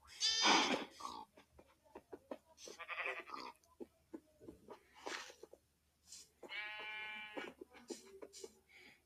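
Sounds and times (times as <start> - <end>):
sheep bleating: 0.2 - 0.7, 2.7 - 3.6, 6.4 - 7.6.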